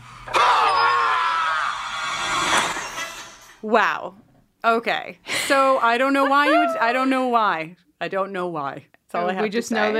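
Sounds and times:
vampire character screaming: 0.3s - 1.8s, 6.5s - 6.9s
speech: 3.6s - 9.9s.

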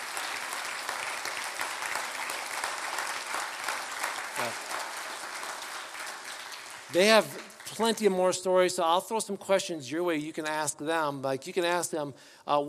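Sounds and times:
audience applauding in a room: 0.0s - 8.2s
speech: 4.4s - 4.6s, 6.9s - 12.6s.

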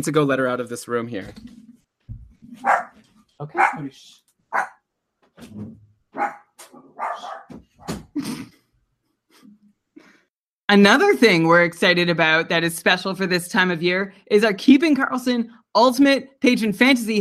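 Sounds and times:
speech: 0.0s - 1.6s, 3.4s - 4.7s, 10.7s - 17.2s
dog barking: 2.6s - 3.9s, 4.5s - 4.8s, 6.2s - 7.9s.

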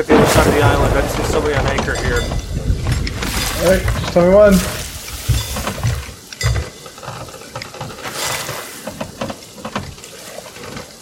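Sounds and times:
speech: 0.0s - 2.5s, 3.6s - 4.8s
water pouring and dribbling: 0.0s - 11.0s
bucket scooping water: 2.9s - 11.0s.

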